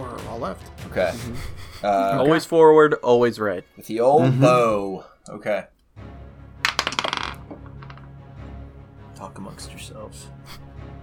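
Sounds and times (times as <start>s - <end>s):
speech: 0.4s - 5.7s, 9.2s - 10.6s
laughter: 1.0s - 2.5s
dice dropping and clattering on a hard surface: 6.6s - 8.1s.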